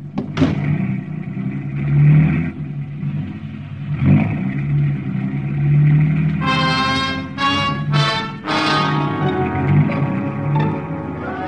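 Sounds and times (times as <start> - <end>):
car engine rumbling and revving while driving through downtown Bangkok streets: 0.0 - 11.4
bright tonal bursts: 6.4 - 11.4.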